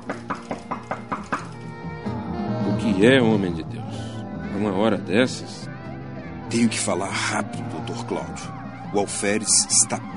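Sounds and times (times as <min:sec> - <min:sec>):
knocking on a door at night: 0:00.0 - 0:01.4
speech: 0:02.8 - 0:03.8, 0:04.6 - 0:05.7, 0:06.5 - 0:10.1.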